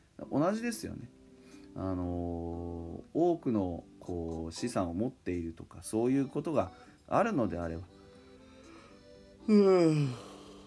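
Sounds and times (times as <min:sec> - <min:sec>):
speech: 0:00.3 - 0:01.2, 0:01.8 - 0:08.0, 0:09.5 - 0:10.3
drawn-out breathy yawn: 0:09.4 - 0:10.6.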